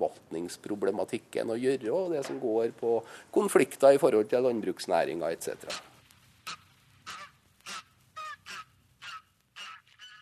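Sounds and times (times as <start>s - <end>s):
speech: 0.4s - 5.9s
flock of pink-footed geese honking: 6.4s - 10.2s.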